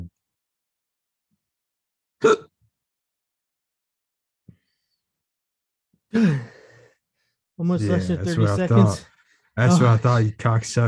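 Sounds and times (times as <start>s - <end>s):
speech: 2.2s - 2.4s, 7.6s - 10.8s
person gasping for air after holding breath: 6.1s - 6.9s.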